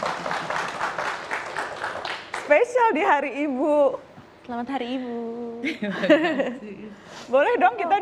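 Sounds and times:
crowd applauding: 0.0s - 2.5s
speech: 2.5s - 7.9s
laughter: 5.6s - 6.8s.

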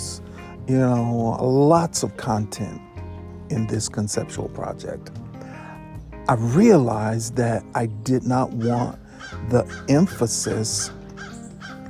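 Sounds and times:
speech: 0.7s - 2.9s, 3.5s - 5.2s, 6.3s - 11.0s
crow cawing: 8.6s - 11.8s.

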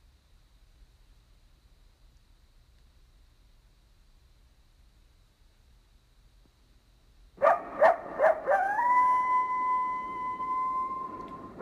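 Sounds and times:
coyotes yipping and howling: 7.4s - 11.6s.

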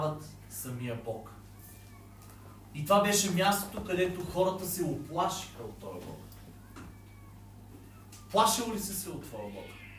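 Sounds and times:
speech: 0.0s - 1.5s, 2.8s - 6.3s, 8.3s - 9.8s
faint cat meows outdoors: 6.4s - 8.7s, 9.3s - 9.9s.

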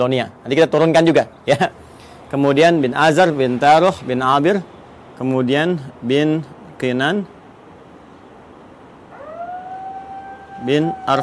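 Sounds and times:
speech: 0.0s - 7.4s, 10.6s - 11.2s
faint hiss: 0.0s - 9.2s
alarm siren wailing in a housing complex: 9.1s - 11.2s.

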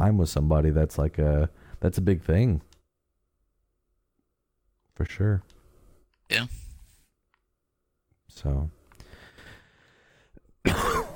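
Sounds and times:
speech: 0.0s - 2.7s, 5.0s - 5.5s, 6.3s - 6.6s, 8.3s - 8.8s
person coughing while recovering from a lingering cough: 10.6s - 11.1s.

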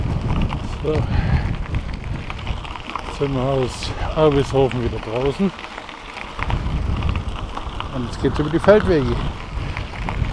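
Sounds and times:
wind blowing hard across open maize and bean fields on a sunny day: 0.0s - 10.3s
speech: 0.8s - 1.3s, 3.2s - 5.7s, 8.0s - 9.4s.

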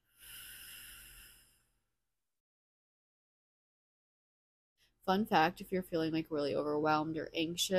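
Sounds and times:
slow nasal inhale and long mouth exhale: 0.0s - 1.8s
speech: 5.0s - 7.7s.

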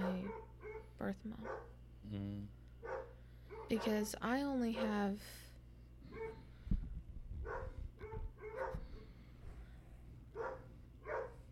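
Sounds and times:
dogs yipping: 0.0s - 1.7s, 2.8s - 4.0s, 7.5s - 9.0s, 10.4s - 11.4s
dogs barking: 0.0s - 1.8s, 2.8s - 4.1s, 4.7s - 5.1s, 6.1s - 6.5s, 7.4s - 9.1s, 10.3s - 11.5s
low steady hum: 0.0s - 11.5s
speech: 0.3s - 3.0s, 3.7s - 5.5s.

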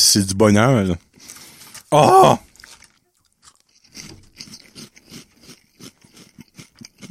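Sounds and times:
speech: 0.1s - 1.1s, 1.9s - 2.5s
crunching on seasoned potato chips: 2.4s - 7.0s.

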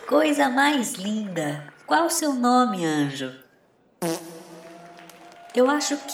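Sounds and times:
speech: 0.2s - 3.4s, 4.0s - 4.4s, 5.6s - 6.1s
fart: 4.0s - 4.8s.

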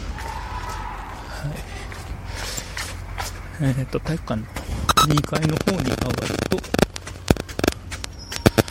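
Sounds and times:
group of people shouting in unison practicing kendo in gymnasium: 0.0s - 1.4s
steady hum: 0.0s - 8.6s
speech: 1.4s - 1.7s, 3.6s - 6.8s.

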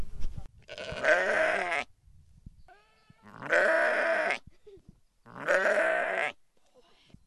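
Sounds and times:
faint outdoor noise: 0.0s - 7.2s
sheep bleating: 0.7s - 1.9s, 2.7s - 4.4s, 5.3s - 6.4s.

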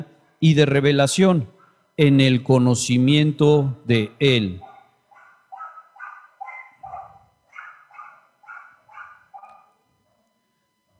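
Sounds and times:
speech: 0.0s - 4.7s
small dog barking: 4.6s - 10.4s.

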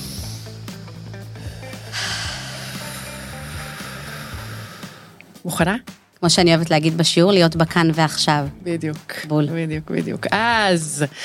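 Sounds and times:
long deep breath drawn in and let out: 0.0s - 5.2s
speech: 5.4s - 11.2s.

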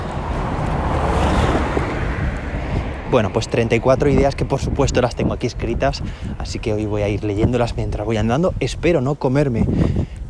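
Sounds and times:
car passing on the street: 0.0s - 6.9s
gusty wind buffeting the microphone: 0.0s - 10.2s
speech: 3.1s - 10.2s.

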